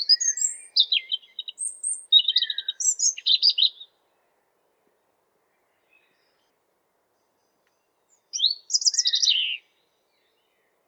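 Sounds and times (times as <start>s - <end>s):
European robin singing: 0.0s - 3.9s, 7.3s - 10.7s.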